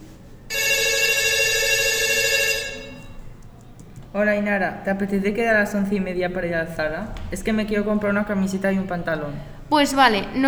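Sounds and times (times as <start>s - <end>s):
telephone ringing: 0.4s - 3.8s
speech: 4.2s - 10.4s.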